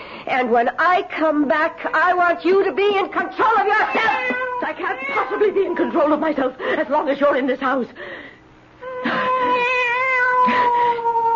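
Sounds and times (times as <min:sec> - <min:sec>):
speech: 0:00.3 - 0:08.3, 0:10.5 - 0:10.8
cat yowling: 0:01.7 - 0:06.1, 0:08.8 - 0:11.3.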